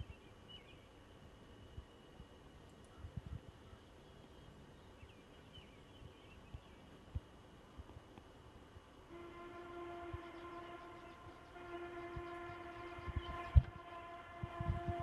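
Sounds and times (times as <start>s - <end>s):
low rumbling noise: 0.0s - 15.0s
distant sustained horn-like tone with harmonic overtones: 9.1s - 15.0s.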